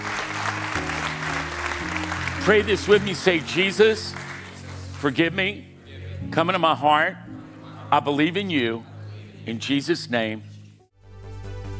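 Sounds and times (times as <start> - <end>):
crowd clapping loudly: 0.0 - 5.6
speech: 2.4 - 4.2, 5.0 - 7.3, 7.9 - 10.5.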